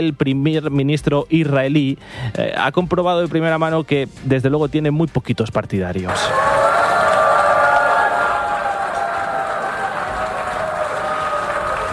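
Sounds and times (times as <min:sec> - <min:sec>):
speech: 0:00.0 - 0:06.4
large crowd of delegates booing in the UN General Assembly hall: 0:06.1 - 0:11.9
scattered clapping: 0:06.1 - 0:11.9.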